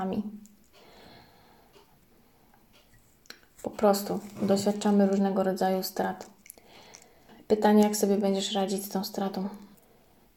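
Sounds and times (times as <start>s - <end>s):
speech: 0.0s - 0.5s, 3.6s - 6.4s, 7.5s - 9.7s
clock ticking: 1.7s - 4.0s.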